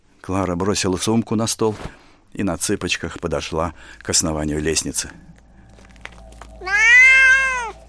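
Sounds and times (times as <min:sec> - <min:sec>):
speech: 0:00.2 - 0:05.4
black shaggy cat meowing: 0:06.6 - 0:07.8.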